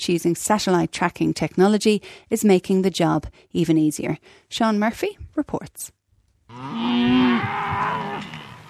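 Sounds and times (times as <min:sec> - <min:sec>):
speech: 0:00.0 - 0:08.5
cow mooing while being hand-fed during drought in New South Wales: 0:06.5 - 0:08.6.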